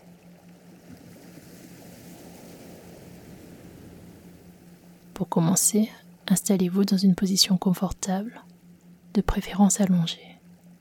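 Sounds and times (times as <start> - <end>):
ocean waves: 0.0 - 5.9
faint low hum: 0.0 - 10.7
speech: 5.2 - 8.5, 9.2 - 10.3.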